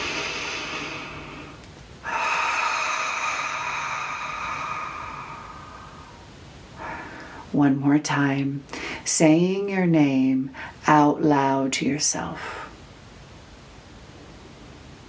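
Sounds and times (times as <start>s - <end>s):
deep breath drawn into the diaphragm and belly: 0.0s - 7.5s
soft sustained tonal drone: 0.0s - 7.6s
speech: 7.5s - 12.6s.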